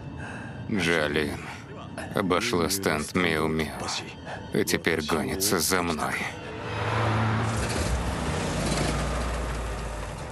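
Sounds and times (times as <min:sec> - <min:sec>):
speech: 0:00.7 - 0:07.2
car engine with a full tank of fuel cranking but failing to start: 0:06.7 - 0:10.2.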